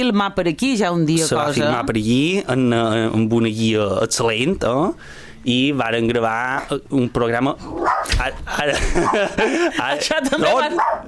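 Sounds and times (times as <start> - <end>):
speech: 0.0 - 11.0
dog barking: 7.8 - 8.1, 10.7 - 11.0
laughter: 8.5 - 10.9.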